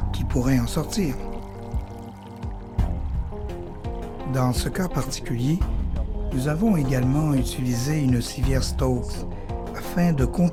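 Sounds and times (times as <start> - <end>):
water draining through small slits cut in a bag holding a body recovered from water: 0.3 - 3.4
speech: 0.4 - 1.3, 4.3 - 10.5.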